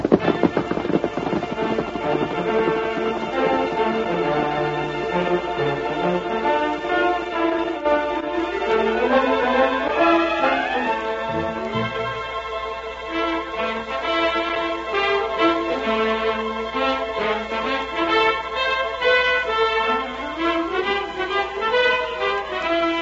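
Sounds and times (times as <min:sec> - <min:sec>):
horse hooves clip-clopping as horse rides off: 0:00.0 - 0:06.7
orchestral music cue: 0:00.0 - 0:23.0.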